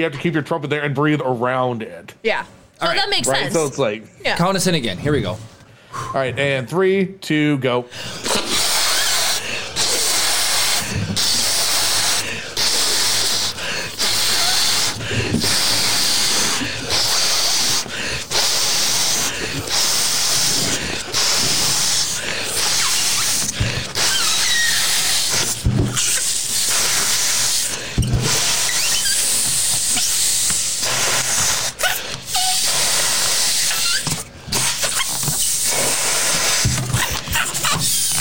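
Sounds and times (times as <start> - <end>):
speech: 0.0 - 8.5
air blowing into and escaping from balloons: 7.9 - 38.1.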